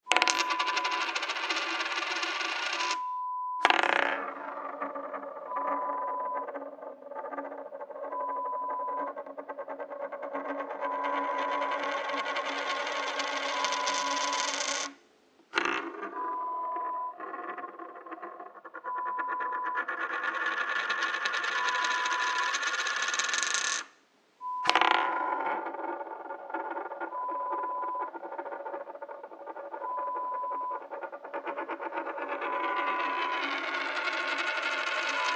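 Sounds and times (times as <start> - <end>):
coin spinning: 0.0 - 15.0, 15.6 - 23.9, 24.6 - 35.3.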